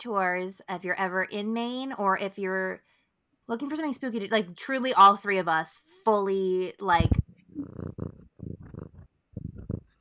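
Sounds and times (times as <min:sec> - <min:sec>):
speech: 0:00.0 - 0:07.8
cat purring: 0:07.0 - 0:09.9.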